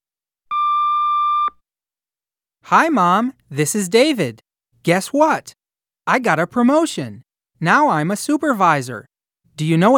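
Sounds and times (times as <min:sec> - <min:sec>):
answering machine beep: 0:00.5 - 0:01.6
speech: 0:02.7 - 0:09.9.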